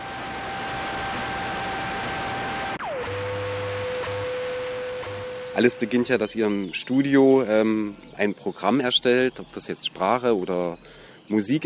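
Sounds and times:
broadband hiss of an untuned FM radio: 0.0 - 6.7
faint drifting tones: 0.0 - 8.2
speech: 5.6 - 11.6.

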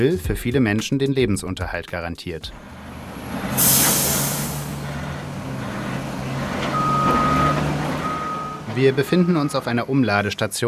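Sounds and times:
speech: 0.0 - 3.9, 8.8 - 10.6
garbage truck engine rumble at a waste transfer station: 2.3 - 10.4
garbage truck air-brake hiss at a waste transfer station in Porto Alegre, Brazil: 3.6 - 4.8
garbage truck reversing beeps: 6.7 - 9.7.

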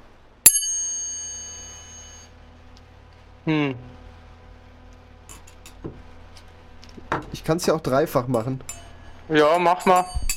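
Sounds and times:
metallic strike on hard disk platters from old hard drives ringing: 0.5 - 2.3, 8.3 - 10.3
speech: 3.4 - 4.0, 7.5 - 10.2.

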